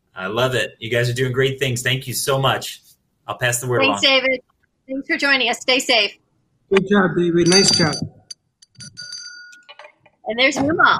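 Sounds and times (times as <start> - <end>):
speech: 0.2 - 8.1, 10.3 - 10.9
soft bell chime: 7.4 - 8.2, 8.8 - 9.6
faint clinking: 7.4 - 9.8.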